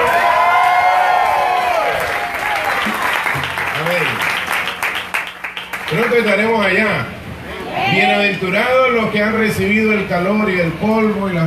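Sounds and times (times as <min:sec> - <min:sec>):
applause: 0:00.0 - 0:06.6
large crowd shouting and cheering: 0:00.0 - 0:06.6, 0:07.4 - 0:08.5
speech: 0:08.0 - 0:11.4.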